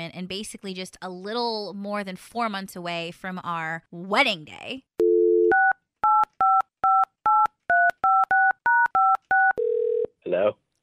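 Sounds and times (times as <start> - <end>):
speech: 0.1 - 5.0
telephone dial tone: 5.0 - 10.1
telephone ringing tone: 6.4 - 10.1.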